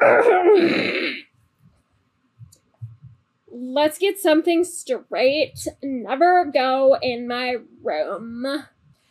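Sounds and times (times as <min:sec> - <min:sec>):
person clearing throat: 0:00.0 - 0:01.3
speech: 0:03.6 - 0:08.8.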